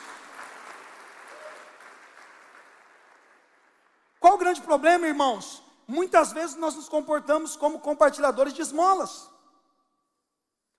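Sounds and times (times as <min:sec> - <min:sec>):
audience applauding: 0:00.0 - 0:04.2
speech: 0:04.5 - 0:09.3.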